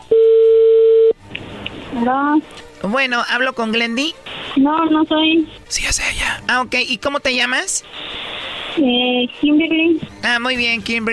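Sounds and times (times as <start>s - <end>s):
phone ringback tone over a telephone line on a call to Guatemala: 0.0s - 1.2s
speech: 2.0s - 8.0s, 8.8s - 11.1s.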